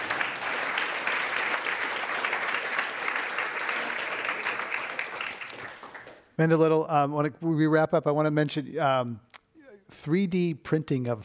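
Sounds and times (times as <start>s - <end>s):
audience applause: 0.0s - 6.3s
speech: 6.4s - 9.3s, 10.0s - 11.2s.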